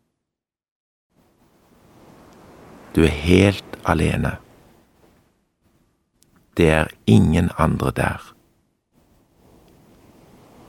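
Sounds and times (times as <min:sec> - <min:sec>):
gentle ocean waves lapping on a beach: 0:01.1 - 0:06.0, 0:09.0 - 0:10.6
speech: 0:03.0 - 0:04.4, 0:06.6 - 0:08.4.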